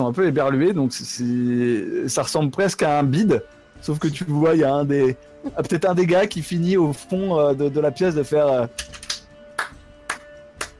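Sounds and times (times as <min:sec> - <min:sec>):
speech: 0:00.0 - 0:09.0
single person clapping slowly in a quiet room: 0:08.8 - 0:10.7.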